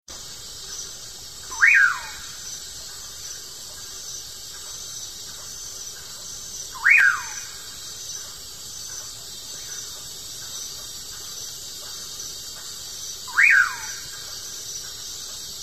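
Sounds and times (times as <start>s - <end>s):
faint constant hiss: 0.1s - 15.6s
common pauraque whistling: 1.5s - 2.3s, 6.8s - 7.6s, 13.3s - 14.0s.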